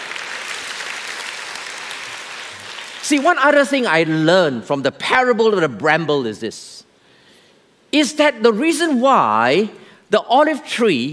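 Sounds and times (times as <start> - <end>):
audience clapping: 0.0 - 3.5
speech: 3.1 - 6.9, 7.9 - 11.1.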